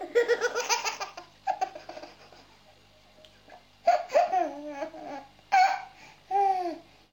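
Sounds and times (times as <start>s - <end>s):
baby laughing funnily: 0.0s - 2.6s, 3.9s - 6.6s.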